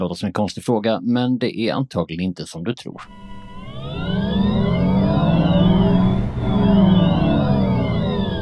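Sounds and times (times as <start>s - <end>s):
speech: 0.0s - 3.2s
electric car synthetic whirring hum while accelerating and braking: 3.1s - 8.4s.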